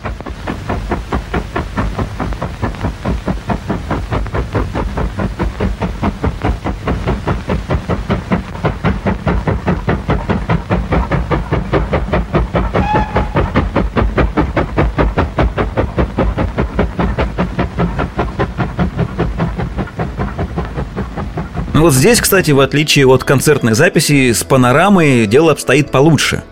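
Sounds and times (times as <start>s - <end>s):
steam locomotive chuffing along railway tracks: 0.0s - 26.5s
whistle-like tone: 12.8s - 13.6s
speech: 21.8s - 26.5s.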